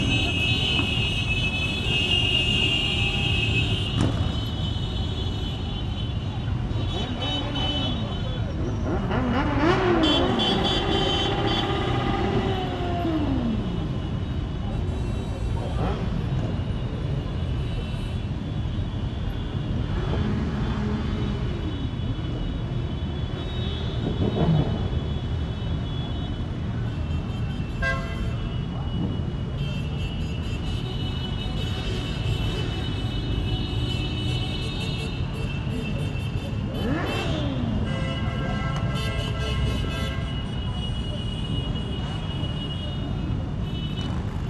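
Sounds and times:
motorcycle parade engines roaring along a boulevard: 0.0s - 25.8s, 28.6s - 44.4s
low rumble of traffic: 0.0s - 44.4s
individual motorcycles revving: 8.5s - 13.7s, 36.6s - 38.3s.

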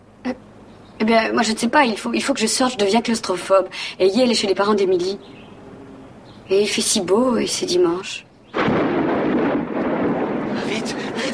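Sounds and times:
speech: 1.1s - 5.4s, 6.5s - 8.3s
thunder from a magnetic storm: 8.5s - 11.3s.

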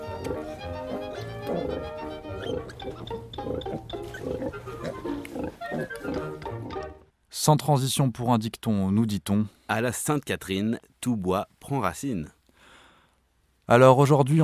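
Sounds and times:
piglets grunting and squealing as they suckle milk from a sow: 0.0s - 6.8s
speech: 7.4s - 12.4s, 13.7s - 14.4s.

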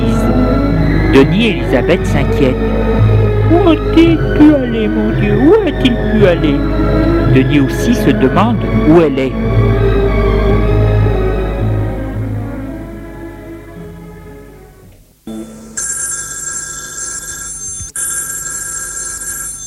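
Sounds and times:
soft music: 0.0s - 18.0s
speech: 1.2s - 2.8s, 3.5s - 9.5s
telephone ringing with a shrill buzzing electric bell: 15.3s - 19.6s.

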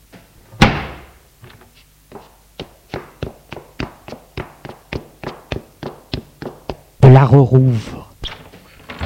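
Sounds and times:
door slamming with a booming echo: 0.6s - 1.1s
footsteps thudding down stairs: 1.4s - 7.0s
speech: 7.1s - 8.0s.

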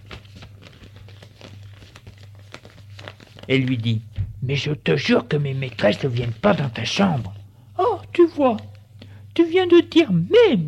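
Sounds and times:
paper crinkling as a newspaper is folded: 0.0s - 4.0s, 5.1s - 7.4s
speech: 3.5s - 7.4s, 8.4s - 8.7s, 9.4s - 10.6s.

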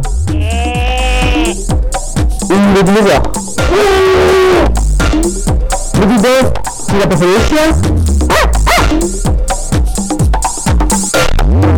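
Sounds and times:
steady thumping beat: 0.0s - 11.6s
goat bleating: 0.2s - 1.6s
speech: 2.8s - 4.2s, 5.2s - 8.2s.

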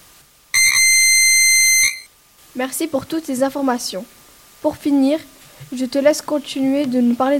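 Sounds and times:
high-pitched buzzy electronic demonstration tone: 0.6s - 2.0s
speech: 2.6s - 7.3s.

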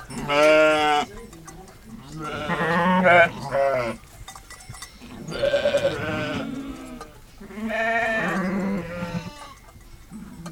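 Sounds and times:
flock of sheep bleating on the Aubrac plateaus: 0.1s - 1.1s, 2.0s - 4.0s, 5.1s - 10.5s.

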